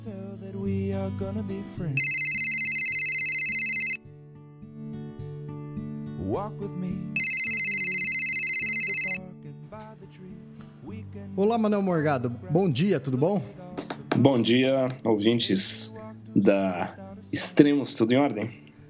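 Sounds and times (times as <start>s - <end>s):
speech: 0.0s - 2.2s, 6.3s - 7.2s, 11.1s - 13.6s, 14.2s - 18.6s
continuous music: 0.0s - 18.8s
telephone ringback while a call is placed: 2.0s - 4.0s, 7.2s - 9.2s.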